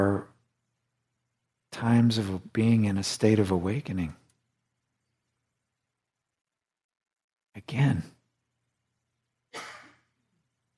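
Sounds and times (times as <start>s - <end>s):
speech: 1.8s - 4.2s, 7.6s - 8.2s
person sneezing: 9.5s - 10.1s.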